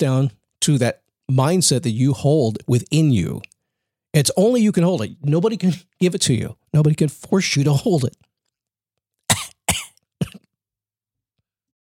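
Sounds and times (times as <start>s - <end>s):
speech: 0.0s - 3.5s, 4.1s - 8.3s
small soft coughs: 9.3s - 10.6s.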